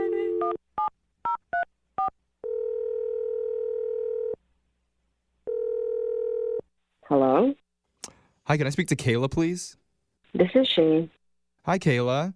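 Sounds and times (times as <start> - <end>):
long steady telephone tone: 0.0 - 0.9, 1.5 - 4.4, 5.4 - 6.7
speech: 7.1 - 7.6, 8.5 - 12.3.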